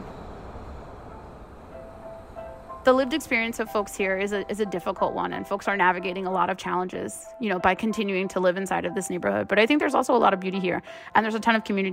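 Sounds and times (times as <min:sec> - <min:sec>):
elevated L train rolling past a place of worship: 0:00.0 - 0:06.8
speech: 0:02.8 - 0:11.9.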